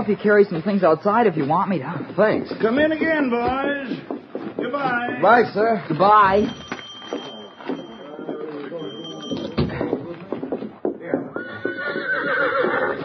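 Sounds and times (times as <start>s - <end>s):
speech: 0.0s - 7.2s
shuffling: 0.0s - 12.0s
horse neighing and whinnying: 11.4s - 13.0s.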